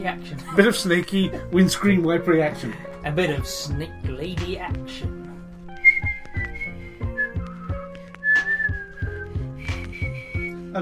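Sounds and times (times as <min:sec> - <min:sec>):
speech: 0:00.0 - 0:05.2
soft rhythmic knocks: 0:02.8 - 0:10.6
person whistling a wavering sliding tune: 0:05.8 - 0:10.7.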